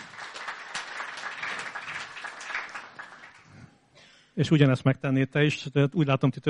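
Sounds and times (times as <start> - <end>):
audience applause of many hands clapping: 0.0 - 3.7
speech: 4.4 - 6.4.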